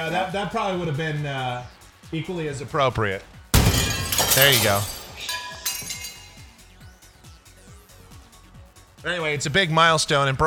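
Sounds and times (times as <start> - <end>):
speech: 0.0 - 3.4, 4.4 - 5.0, 9.0 - 10.4
glass pieces clinking and tinkling: 3.6 - 6.6
glass shattering: 3.6 - 6.7.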